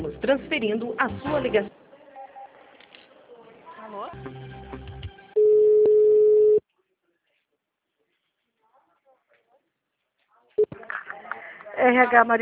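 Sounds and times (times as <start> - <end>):
speech: 0.3 - 1.8, 3.9 - 4.9, 11.8 - 12.4
telephone busy tone after a dropped call: 5.4 - 6.6.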